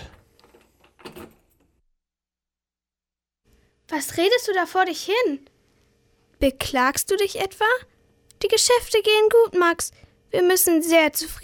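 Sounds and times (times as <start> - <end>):
key turning in a shop door lock: 0.4 - 1.6
speech: 3.9 - 5.5, 6.4 - 11.4.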